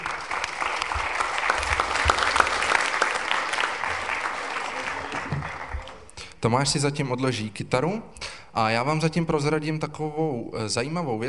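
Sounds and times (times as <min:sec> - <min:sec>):
audience applause: 0:00.0 - 0:06.1
speech: 0:06.4 - 0:11.2.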